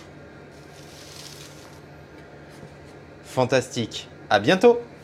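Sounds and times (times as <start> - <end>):
knife cutting through a baked brioche topped with dried figs: 0.7 - 1.8
speech: 3.3 - 4.9.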